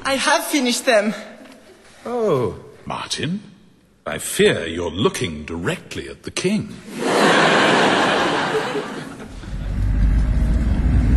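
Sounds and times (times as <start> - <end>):
speech: 0.1 - 1.3, 2.0 - 8.0
laughter: 6.9 - 9.8
heavy truck driving past: 9.3 - 11.1.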